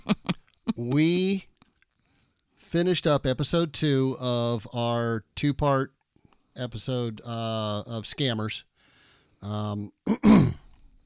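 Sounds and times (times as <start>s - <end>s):
speech: 0.8s - 1.5s, 2.7s - 6.0s, 6.6s - 8.7s, 9.4s - 10.6s
person clearing throat: 10.1s - 10.7s.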